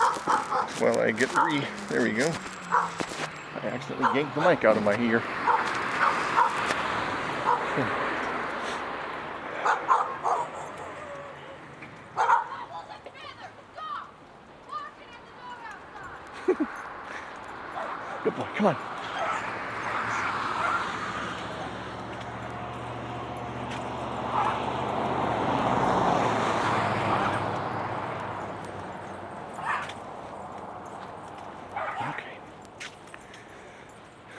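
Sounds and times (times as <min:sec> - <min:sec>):
male dog giving short barks and yips: 0:00.0 - 0:04.6, 0:05.4 - 0:06.8, 0:07.4 - 0:07.8, 0:09.6 - 0:11.4, 0:12.2 - 0:13.0, 0:17.7 - 0:18.1, 0:19.0 - 0:21.8, 0:24.3 - 0:24.7, 0:29.5 - 0:30.0, 0:31.7 - 0:32.2
noisy outdoor background: 0:00.0 - 0:34.3
speech: 0:00.8 - 0:02.6, 0:03.6 - 0:05.5, 0:07.8 - 0:08.0, 0:18.6 - 0:18.9.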